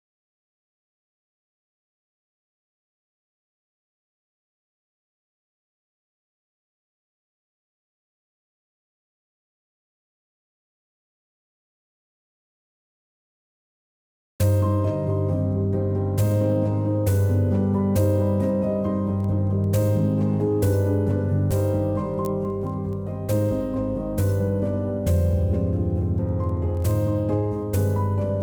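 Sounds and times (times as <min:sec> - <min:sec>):
mellow sad melody in C minor: 0:14.4 - 0:28.4.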